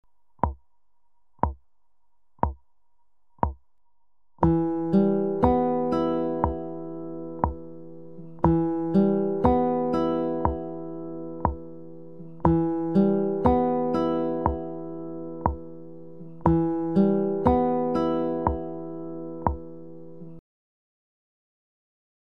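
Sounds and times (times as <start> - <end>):
picking: 4.4 - 20.4.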